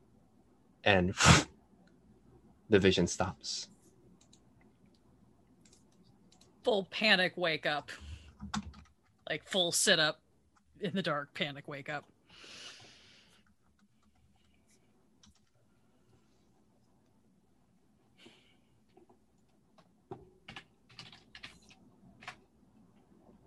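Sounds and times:
speech: 0.8s - 1.5s, 2.7s - 3.7s, 6.6s - 8.7s, 9.3s - 10.2s, 10.8s - 12.6s
keyboard typing: 4.1s - 4.5s, 5.5s - 6.6s, 8.3s - 9.3s, 13.4s - 15.6s, 18.9s - 22.4s.

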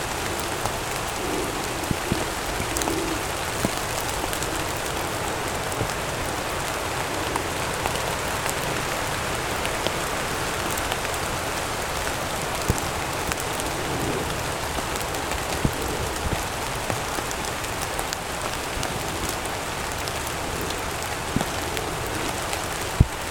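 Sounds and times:
rain falling steadily in the New Forest: 0.0s - 23.2s.

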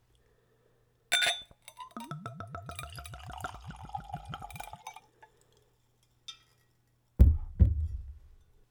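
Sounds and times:
glass clinking: 1.1s - 5.4s
Zubrovka spirit glugging from a bottle into a Glencairn glass: 1.8s - 5.0s.

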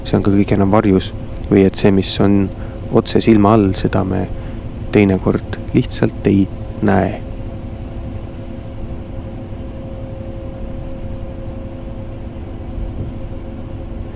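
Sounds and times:
bus engine drone on a highway: 0.0s - 8.7s
road rumble from inside a moving bus: 0.0s - 8.7s
faint tonal whine: 0.0s - 12.5s, 13.5s - 14.1s
speech: 0.1s - 7.3s.

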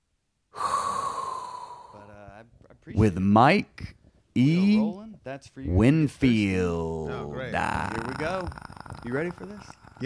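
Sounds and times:
person inhaling deeply: 0.5s - 2.1s
speech: 2.8s - 9.8s.

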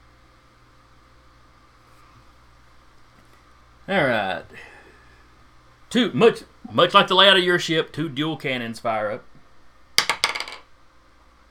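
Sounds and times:
speech: 3.9s - 4.7s, 5.9s - 9.3s
dice rolling on a hard surface during a tabletop role-playing game: 10.0s - 10.7s.

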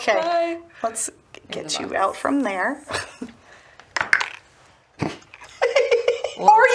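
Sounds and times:
speech: 0.0s - 3.3s, 6.4s - 6.7s
dice clattering onto a hard tabletop: 4.0s - 4.4s.

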